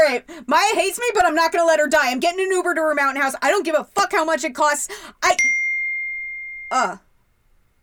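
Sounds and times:
speech: 0.1s - 5.5s, 6.7s - 7.1s
phone email notification chime: 5.4s - 6.8s.

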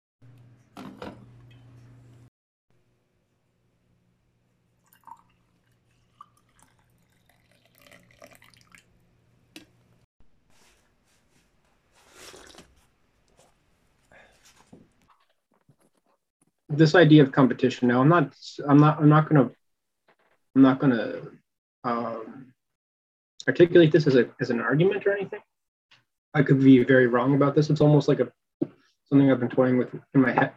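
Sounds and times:
coffee pouring into a cup: 4.8s - 9.0s, 12.3s - 12.6s
speech: 16.8s - 19.6s, 20.6s - 22.4s, 23.4s - 25.5s, 26.3s - 30.5s.

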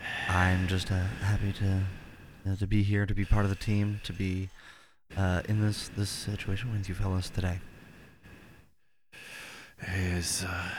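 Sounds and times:
man breathing heavily into microphone held to his throat as ASMR: 0.0s - 2.5s, 3.2s - 5.1s, 7.6s - 10.7s
speech: 0.3s - 7.7s, 9.8s - 10.7s.

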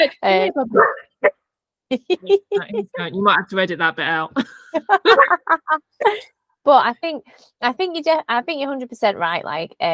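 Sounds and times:
speech: 0.0s - 9.9s
dog barking and yelping: 0.7s - 1.3s
laughter: 1.9s - 3.2s, 4.4s - 6.3s.

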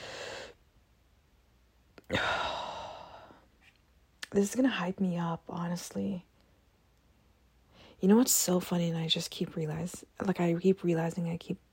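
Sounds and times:
longer louder controlled deep breath drawn in: 0.0s - 0.6s, 2.1s - 3.5s
soft airy controlled deep exhale: 2.1s - 3.4s
speech: 4.3s - 6.3s, 8.0s - 11.6s.

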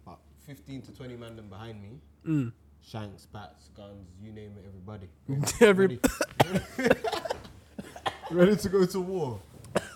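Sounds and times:
speech: 0.5s - 7.5s, 8.3s - 9.8s
person coughing: 6.0s - 6.9s, 9.8s - 9.9s.

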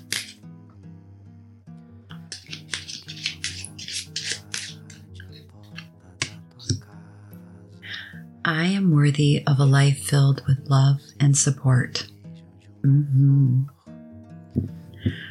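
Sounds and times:
deck of cards being shuffled: 0.0s - 0.4s, 2.3s - 5.1s
gentle music: 0.0s - 15.2s
speech: 8.5s - 12.1s, 12.8s - 13.8s.

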